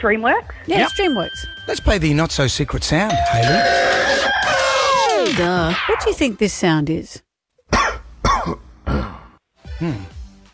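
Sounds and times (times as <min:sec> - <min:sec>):
speech: 0:00.0 - 0:04.5, 0:05.2 - 0:07.3, 0:09.8 - 0:10.2
person coughing: 0:07.7 - 0:09.2.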